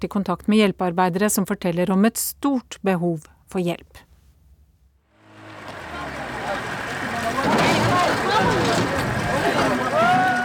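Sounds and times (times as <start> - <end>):
speech: 0.0 - 4.1
boat engine noise: 5.1 - 10.4
crowd of refugees on a boat calling and chattering: 5.2 - 10.4
water rumbling at a riverbank: 5.2 - 10.4.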